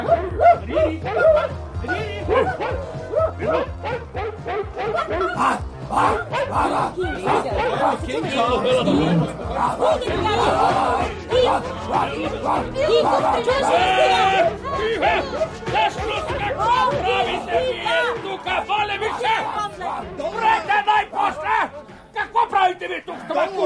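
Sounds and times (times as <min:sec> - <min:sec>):
dog barking and yipping: 0:00.0 - 0:01.6, 0:02.3 - 0:08.0, 0:11.4 - 0:14.4
laughter: 0:00.0 - 0:23.6
several people talking: 0:00.0 - 0:23.6.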